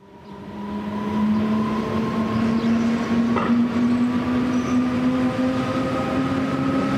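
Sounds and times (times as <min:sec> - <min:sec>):
RhB GE 662 electric locomotive traction motors and gearbox whining: 0:00.0 - 0:06.9
rail noise rumbling: 0:00.0 - 0:06.9.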